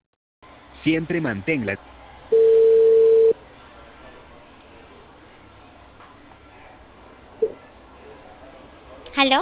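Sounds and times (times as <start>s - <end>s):
speech: 0.8s - 2.0s
steady telephone tone after a call cuts off: 2.3s - 3.4s.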